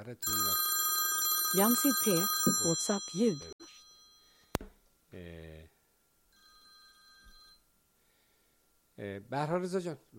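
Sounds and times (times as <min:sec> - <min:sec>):
telephone ringing: 0:00.0 - 0:04.6, 0:06.4 - 0:07.6
speech: 0:00.1 - 0:00.7, 0:01.5 - 0:03.5, 0:09.0 - 0:10.1.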